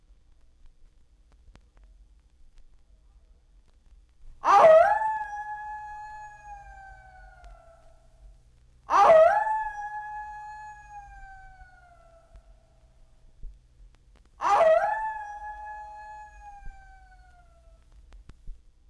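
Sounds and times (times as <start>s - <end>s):
coyote howls: 4.4s - 8.0s, 8.9s - 12.8s, 14.4s - 17.8s.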